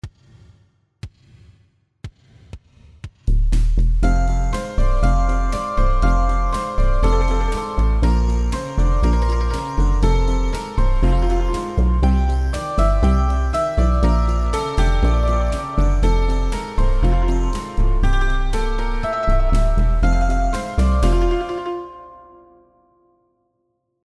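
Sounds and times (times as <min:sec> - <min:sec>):
cimbalom blues music: 0:04.0 - 0:22.2.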